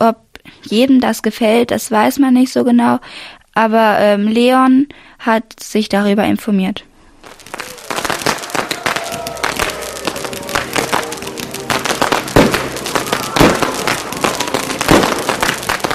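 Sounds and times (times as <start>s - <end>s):
speech: 0.0s - 6.9s
firecrackers crackling: 7.2s - 15.9s
faint crowd noise: 7.5s - 15.9s.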